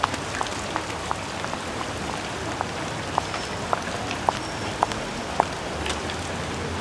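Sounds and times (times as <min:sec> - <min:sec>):
rain falling steadily: 0:00.0 - 0:06.8.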